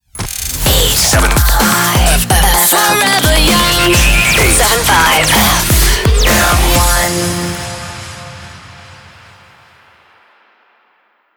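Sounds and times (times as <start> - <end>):
jingle music: 0.6 - 9.7.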